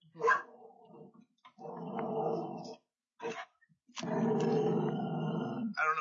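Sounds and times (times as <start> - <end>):
dog barking at a deer: 0.1 - 0.7, 3.2 - 3.5
dog growling at a deer: 0.3 - 3.4, 4.0 - 5.9.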